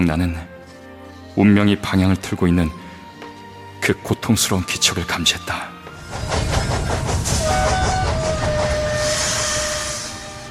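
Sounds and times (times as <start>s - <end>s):
speech: 0.0s - 0.5s, 1.4s - 2.8s, 3.9s - 6.4s
train arriving on rails: 5.9s - 10.5s
hiss of released air from a train: 8.7s - 10.5s.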